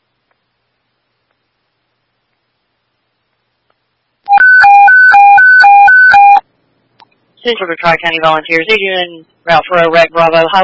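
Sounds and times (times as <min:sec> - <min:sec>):
radio dispatch paging alert tones: 0:04.3 - 0:06.4
speech: 0:07.4 - 0:10.6.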